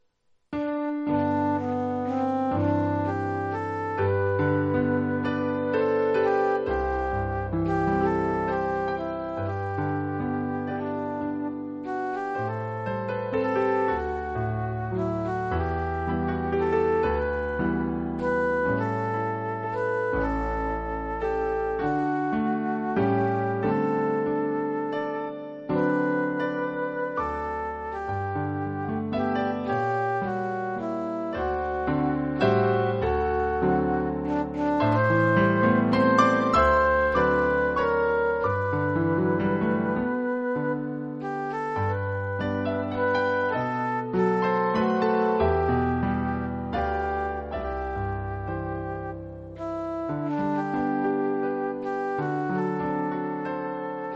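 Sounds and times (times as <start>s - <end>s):
piano: 0.0s - 54.1s.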